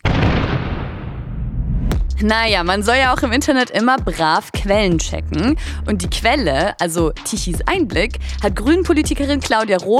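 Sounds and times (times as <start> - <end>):
explosion sound effect with deep rumble: 0.0 - 2.1
speech: 2.2 - 9.9.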